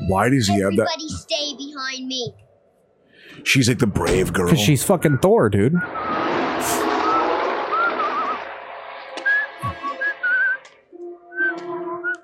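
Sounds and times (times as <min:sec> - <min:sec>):
speech: 0:00.1 - 0:02.5, 0:03.3 - 0:06.9
rushing noise: 0:05.8 - 0:10.9
man whistling a tune: 0:07.0 - 0:08.5, 0:09.2 - 0:12.2.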